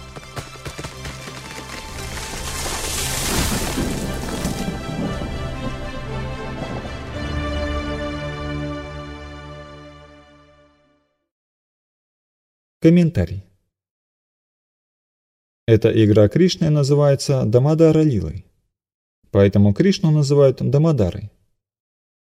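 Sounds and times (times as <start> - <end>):
uprooted trees crashing down with splintering wood and heavy impacts: 0.0 - 7.5
speech: 12.8 - 13.5, 15.7 - 18.5, 19.3 - 21.4.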